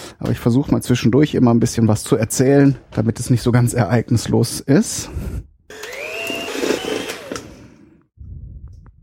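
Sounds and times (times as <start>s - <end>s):
speech: 0.2s - 5.9s
electric hand mixer whipping butter with powdered sugar and lemon zest: 5.7s - 8.0s.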